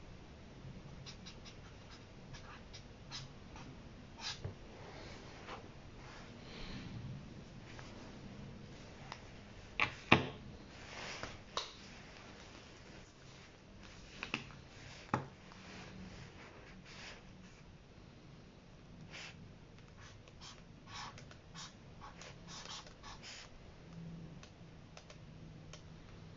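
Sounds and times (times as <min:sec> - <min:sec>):
low steady hum: 0:00.0 - 0:26.3
pen taps and scratches while copying a passage out of a book by hand: 0:20.0 - 0:23.4.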